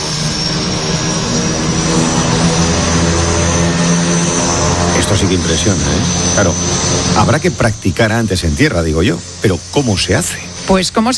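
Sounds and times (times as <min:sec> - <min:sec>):
aircraft engines roaring in flight: 0:00.0 - 0:11.1
speech: 0:05.2 - 0:11.1.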